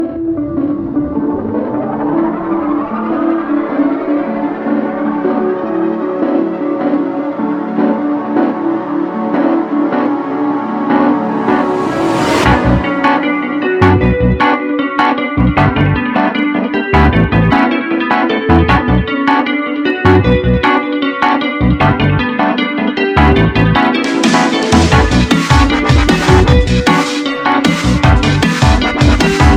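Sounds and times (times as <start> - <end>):
dubstep role play game music: 0.0 - 22.5, 23.2 - 29.5.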